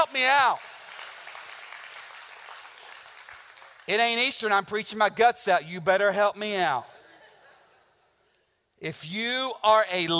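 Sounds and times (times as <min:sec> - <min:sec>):
speech: 0:00.0 - 0:00.7, 0:03.9 - 0:06.9, 0:08.8 - 0:10.1
crowd clapping indoors: 0:00.0 - 0:04.5.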